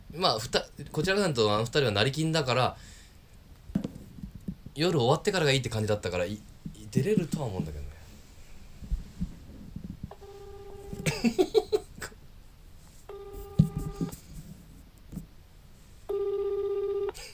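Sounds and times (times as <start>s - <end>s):
small handling noises: 0.0s - 15.9s
speech: 0.1s - 3.0s, 4.8s - 7.8s, 11.2s - 11.6s
telephone ringback tone: 10.1s - 11.8s, 13.1s - 14.2s, 16.1s - 17.3s
laughter: 11.0s - 12.2s.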